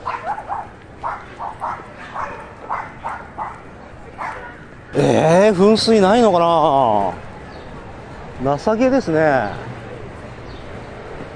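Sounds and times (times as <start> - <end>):
dog barking at a dog run: 0.0 - 4.7
faint outdoor hiss: 0.0 - 11.3
speech: 5.0 - 7.2, 8.4 - 9.7.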